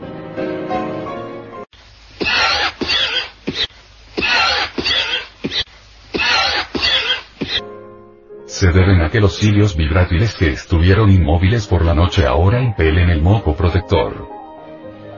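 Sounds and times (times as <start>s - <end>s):
heavy wheezy breaths: 2.2s - 7.6s
smoker's harsh raspy coughing fit: 2.2s - 7.6s
speech: 8.6s - 14.4s.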